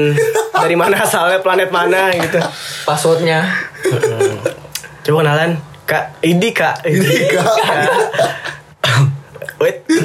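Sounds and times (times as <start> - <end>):
laughter: 0.0 - 1.2, 3.8 - 4.6, 6.9 - 8.6
speech: 0.0 - 8.4, 9.0 - 10.0
harsh raspy coughs: 8.8 - 9.2.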